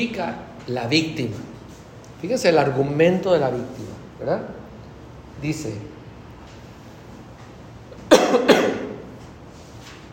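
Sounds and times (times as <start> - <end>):
speech: 0.0 - 1.5, 2.2 - 4.6, 5.4 - 6.0
person coughing: 8.1 - 9.1.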